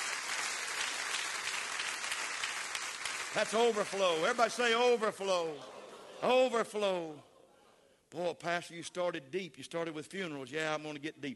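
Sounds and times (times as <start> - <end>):
audience clapping: 0.0 - 5.3
speech: 3.3 - 7.3, 8.1 - 11.3
laughter: 4.3 - 7.5.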